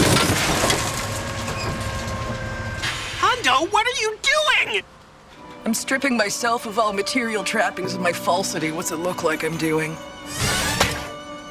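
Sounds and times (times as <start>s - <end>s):
metal panels and caterpillar treads crunching in a scrapyard crusher: 0.0s - 3.2s
speech: 3.5s - 5.0s, 5.6s - 10.5s.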